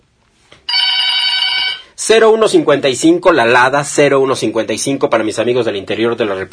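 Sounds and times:
bright metallic telephone bell ringing with a rapid trill: 0.7s - 2.0s
speech: 2.1s - 6.5s.

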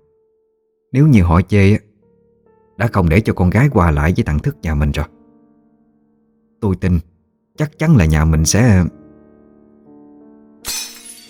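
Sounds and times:
speech: 0.9s - 1.9s, 2.8s - 5.2s, 6.6s - 9.0s
bowls smashing in a kitchen: 10.6s - 11.2s.

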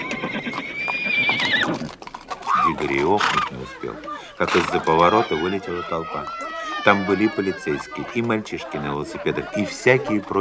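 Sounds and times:
rearing horse neighing as if in pain: 0.0s - 8.0s
soft horse hoof clops: 0.0s - 10.3s
laughter: 2.6s - 10.3s
speech: 2.9s - 10.3s.

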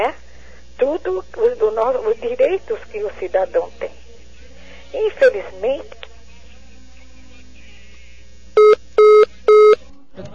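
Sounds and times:
speech: 0.0s - 0.2s, 0.8s - 3.8s, 4.9s - 6.0s, 10.2s - 10.3s
telephone beeps after a dropped phone call: 8.6s - 9.8s.

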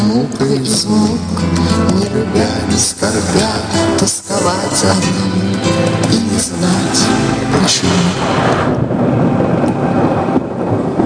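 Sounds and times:
speech: 0.2s - 9.4s
rain hissing steadily and densely: 6.7s - 11.0s
rumbling thunder: 7.5s - 11.0s.

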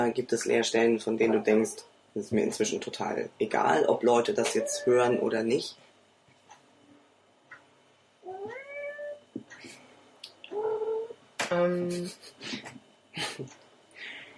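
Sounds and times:
speech: 0.0s - 5.8s, 11.5s - 13.6s
small cat meowing: 4.4s - 5.3s, 8.2s - 9.2s.

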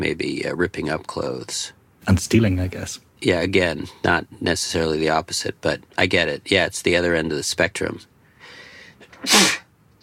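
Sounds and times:
speech: 0.0s - 8.1s, 9.2s - 9.6s
sharp intake of breath: 8.3s - 9.7s
loud sneeze: 9.0s - 9.7s.

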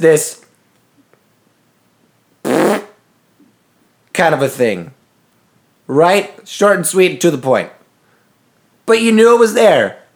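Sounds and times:
speech: 0.0s - 0.4s, 4.2s - 5.0s, 5.9s - 7.8s, 8.9s - 10.0s
voice imitating a short breathy fart: 2.4s - 3.0s.

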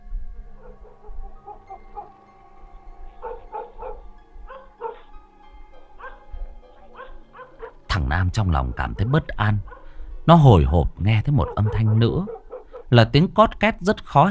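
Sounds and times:
neighbour's dog barking with high-pitched yips: 0.6s - 2.2s, 3.2s - 5.1s, 6.0s - 7.8s, 9.7s - 10.0s, 11.3s - 12.9s
speech: 8.1s - 9.7s, 10.3s - 14.2s.

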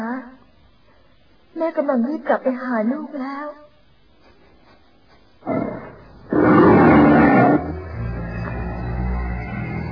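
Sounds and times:
speech: 1.7s - 3.6s
leopard, tiger and lion roaring: 5.4s - 9.3s.

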